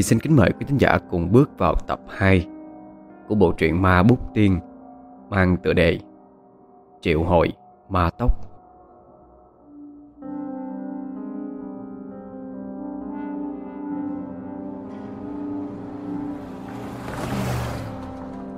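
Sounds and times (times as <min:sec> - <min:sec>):
speech: 0:00.0 - 0:02.6, 0:03.3 - 0:04.7, 0:05.3 - 0:06.1, 0:07.0 - 0:08.5
car engine pulling away on a misty night road: 0:14.2 - 0:18.5.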